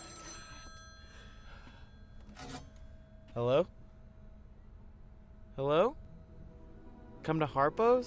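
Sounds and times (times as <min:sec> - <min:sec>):
payphone ringing with an electronic trill: 0:00.0 - 0:03.4
speech: 0:03.4 - 0:03.8, 0:05.6 - 0:06.0, 0:07.2 - 0:08.0.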